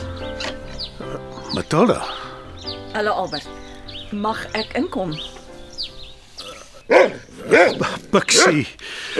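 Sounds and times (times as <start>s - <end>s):
speech: 1.7s - 2.2s, 2.9s - 3.6s, 4.1s - 5.4s, 7.6s - 9.1s
dog barking loudly: 6.9s - 9.1s.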